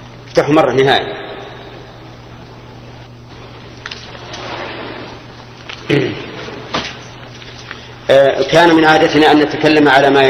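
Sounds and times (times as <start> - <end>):
low electrical hum: 0.0 - 10.2
speech: 0.4 - 1.3, 5.9 - 6.3, 8.1 - 10.2
door opening with a short clunk: 3.7 - 7.2.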